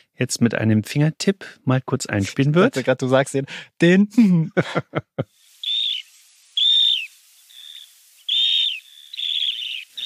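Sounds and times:
speech: 0.1 - 5.4
laughter: 4.3 - 5.2
migratory coastal bird calling with whistled notes: 5.6 - 10.0.

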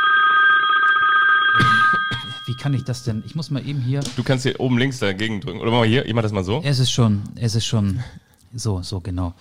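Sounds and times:
modern phone ringtone ringing: 0.0 - 3.7
speech: 2.5 - 9.3.

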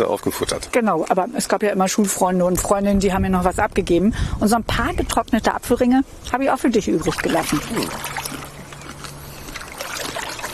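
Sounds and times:
speech: 0.0 - 8.2
water trickling: 6.3 - 10.5
paddle dipping in water along a reedy shore: 7.0 - 10.5.

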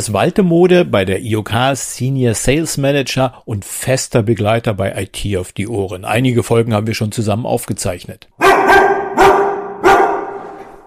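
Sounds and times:
speech: 0.0 - 8.9
dog barking at a company workplace: 8.4 - 10.8.

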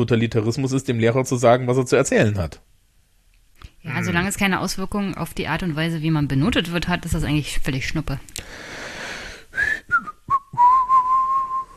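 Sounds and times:
speech: 0.0 - 2.7, 3.8 - 8.8
soft hiss: 0.0 - 11.7
person whistling: 9.6 - 11.7.

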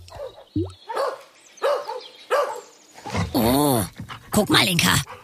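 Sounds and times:
approaching dog barking in sharp yaps: 0.2 - 2.7
speech: 4.3 - 5.1.

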